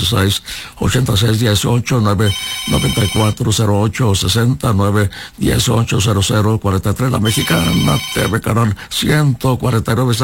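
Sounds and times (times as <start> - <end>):
speech: 0.0 - 10.2
telephone ringing on a live call-in TV program: 2.2 - 3.5, 7.2 - 8.4.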